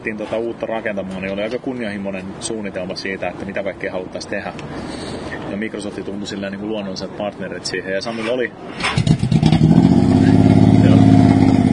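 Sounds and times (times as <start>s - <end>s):
speech: 0.0s - 9.3s
motorcycle engine revving: 8.7s - 11.7s.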